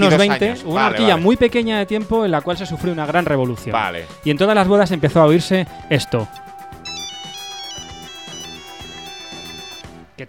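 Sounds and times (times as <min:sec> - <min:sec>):
speech: 0:00.0 - 0:06.5
mobile phone ringtone melody in bright synthetic tones: 0:06.8 - 0:09.9.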